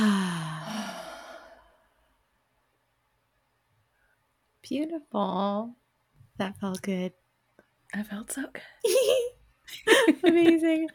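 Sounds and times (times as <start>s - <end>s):
group of people exhaling deeply after a held breath: 0.0s - 1.9s
speech: 4.7s - 5.8s, 6.4s - 7.2s, 7.9s - 10.9s.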